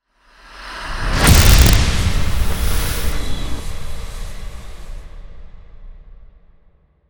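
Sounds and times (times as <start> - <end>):
hit swell: 1.2 - 4.0.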